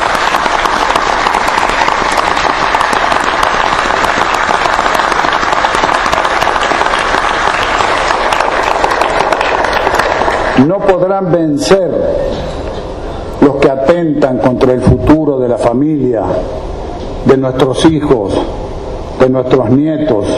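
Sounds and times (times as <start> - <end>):
audience applause after a speech: 0.0 - 11.0
speech: 10.6 - 12.2, 13.6 - 18.6, 19.2 - 20.3.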